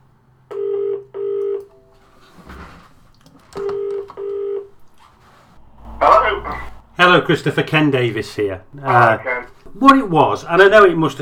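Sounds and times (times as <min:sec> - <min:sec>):
telephone touch tones of a number being dialed: 0:00.5 - 0:01.9, 0:03.6 - 0:04.7
faint telephone line noise: 0:05.5 - 0:09.5
speech: 0:06.0 - 0:11.1.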